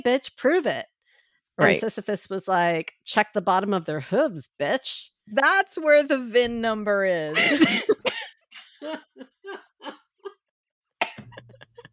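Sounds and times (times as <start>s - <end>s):
speech: 0.0s - 0.9s, 1.6s - 8.1s, 8.8s - 10.0s
raspy coughing fit: 7.4s - 8.3s.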